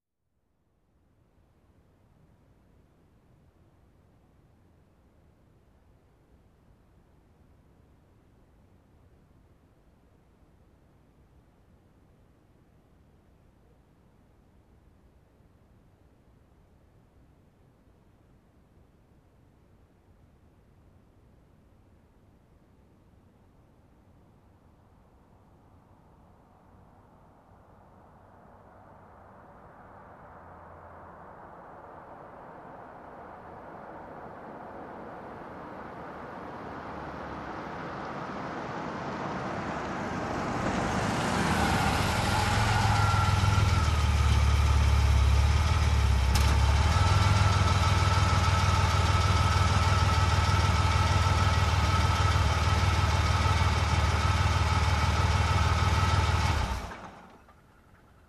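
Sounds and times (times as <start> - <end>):
car approaching and parking: 25.9 - 58.2.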